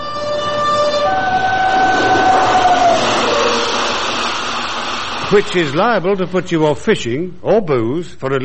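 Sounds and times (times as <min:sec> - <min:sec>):
train rumbling over a bridge: 0:00.0 - 0:06.5
sustained horn-like tones from a passing train: 0:00.0 - 0:06.7
speech: 0:05.3 - 0:08.4.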